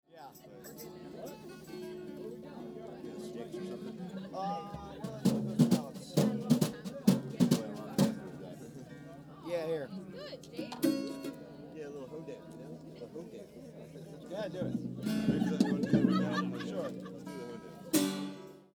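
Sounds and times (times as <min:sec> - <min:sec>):
drum: 0:04.8 - 0:08.6, 0:14.5 - 0:18.3
laughing: 0:14.6 - 0:17.9.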